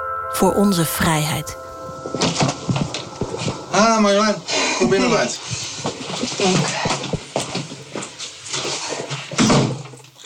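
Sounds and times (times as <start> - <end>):
speech: 0.4 - 2.6, 3.8 - 7.0
front door of a home opened and shut for a visitor: 8.6 - 10.0.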